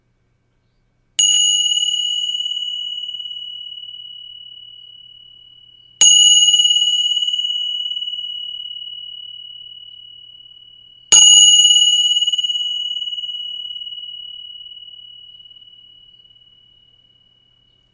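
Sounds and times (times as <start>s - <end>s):
Tibetan bells ringing: 1.2s - 4.9s, 6.0s - 10.2s, 11.1s - 15.9s.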